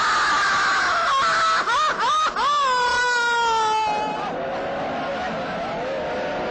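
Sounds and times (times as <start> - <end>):
person crying with anguished wailing and sobbing: 0.2 - 4.3
laughter: 0.9 - 6.3.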